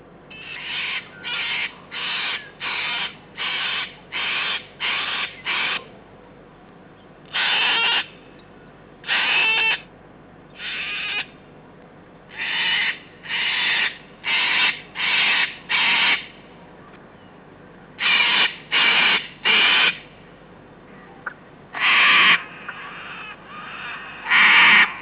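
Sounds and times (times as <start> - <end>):
cockatoo calling: 0.3 - 5.9, 7.3 - 9.9, 10.6 - 11.4, 12.3 - 16.9, 18.0 - 20.0, 21.0 - 24.9.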